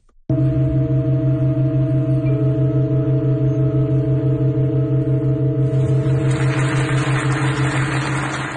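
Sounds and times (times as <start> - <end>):
pipe organ in Halberstadt Germany holding a steady chord of sustained notes: 0.3 - 8.5.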